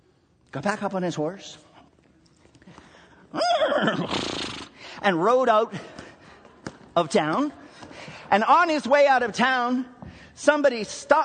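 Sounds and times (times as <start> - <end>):
speech: 0.5 - 1.7, 3.3 - 4.4, 5.0 - 6.0, 7.0 - 7.6, 8.3 - 11.2
person imitating a horse neighing with their voice: 3.3 - 4.7.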